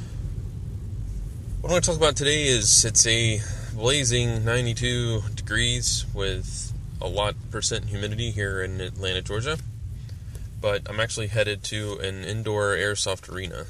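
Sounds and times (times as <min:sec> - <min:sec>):
car interior engine and road drone while driving: 0:00.0 - 0:13.6
speech: 0:01.6 - 0:09.7, 0:10.6 - 0:13.6.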